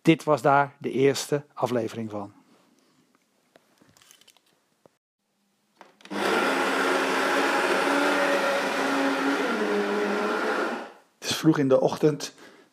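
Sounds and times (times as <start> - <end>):
speech: 0.0 - 2.4, 11.4 - 12.7
coffee grinder grinding coffee beans: 6.0 - 11.0.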